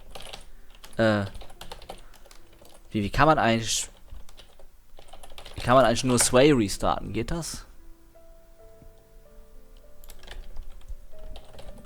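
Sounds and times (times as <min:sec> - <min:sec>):
typing on a computer keyboard while editing a config file: 0:00.0 - 0:02.9, 0:03.9 - 0:06.3, 0:10.0 - 0:11.8
speech: 0:01.0 - 0:01.4, 0:02.9 - 0:03.9, 0:05.6 - 0:07.7.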